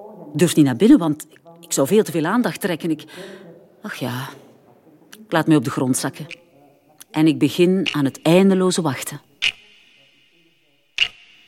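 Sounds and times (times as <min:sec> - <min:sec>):
speech: 0:00.3 - 0:04.4, 0:05.3 - 0:06.4, 0:07.1 - 0:09.3
wristwatch ticking with a metallic ring: 0:06.1 - 0:11.4.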